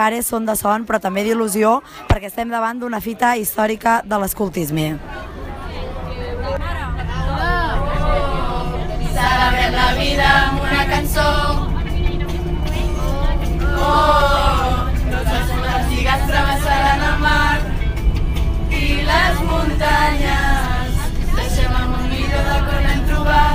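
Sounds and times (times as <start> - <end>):
speech: 0.0 - 5.4
many voices of scouts chattering inside a moving bus: 0.5 - 23.5
steady low bus engine rumble: 4.3 - 23.5.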